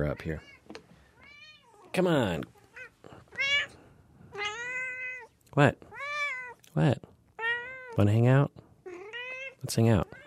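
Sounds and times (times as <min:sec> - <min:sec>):
speech: 0:00.0 - 0:00.6, 0:02.0 - 0:03.2, 0:05.6 - 0:05.9, 0:06.8 - 0:07.1, 0:08.0 - 0:08.6, 0:09.6 - 0:10.2
cat meowing: 0:01.2 - 0:01.9, 0:02.6 - 0:06.6, 0:07.4 - 0:08.0, 0:08.8 - 0:10.2.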